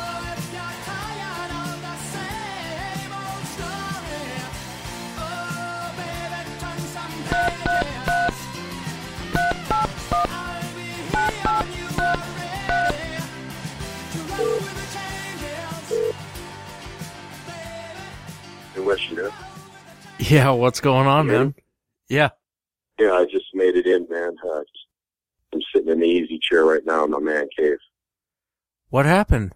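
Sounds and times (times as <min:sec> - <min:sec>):
upbeat music: 0:00.0 - 0:21.5
telephone keypad tones: 0:07.3 - 0:08.4, 0:09.4 - 0:10.4, 0:11.1 - 0:13.1
speech: 0:20.3 - 0:22.4, 0:23.2 - 0:24.7, 0:25.5 - 0:27.9, 0:28.9 - 0:29.5.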